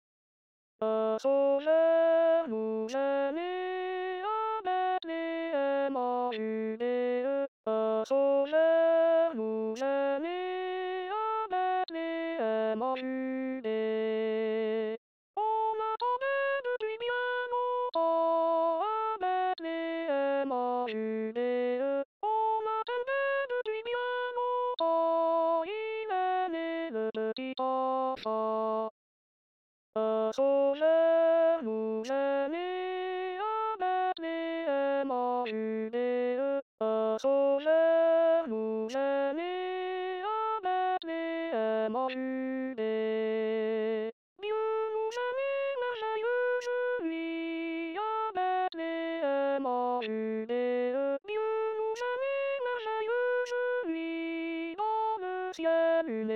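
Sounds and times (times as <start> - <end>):
alto voice singing a chorale: 0.8 - 28.9, 30.0 - 56.3.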